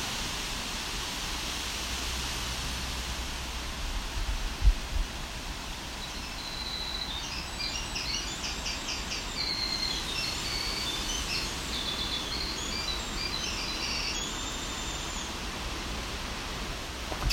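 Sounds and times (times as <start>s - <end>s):
background hiss: 0.0s - 17.3s
Winter Wren song in dense dark low woods: 5.8s - 17.3s.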